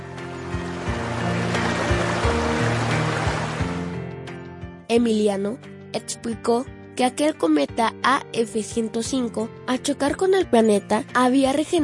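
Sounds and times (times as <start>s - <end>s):
water lapping around feet: 0.9s - 3.9s
speech: 4.9s - 11.8s.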